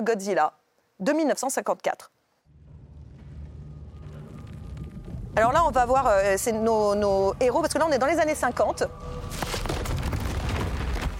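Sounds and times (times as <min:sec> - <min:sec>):
speech: 0:00.0 - 0:02.2, 0:05.4 - 0:09.4
crackling bursts: 0:02.4 - 0:11.1
explosion blasts and rumbling in a film excerpt: 0:02.5 - 0:11.1.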